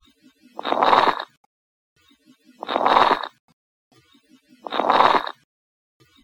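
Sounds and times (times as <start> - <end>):
coarse crackles: 0.6 - 1.4, 2.6 - 3.3, 4.7 - 5.4.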